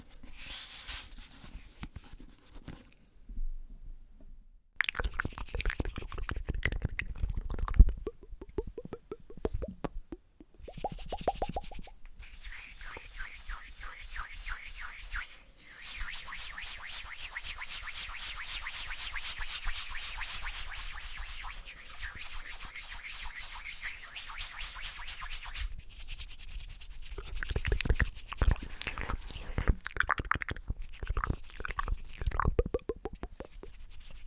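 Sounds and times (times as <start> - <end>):
wet mouth clicks, smacks and pops: 4.8 - 12.0, 27.0 - 34.2
dense hissy rubbing of hands: 5.5 - 34.2.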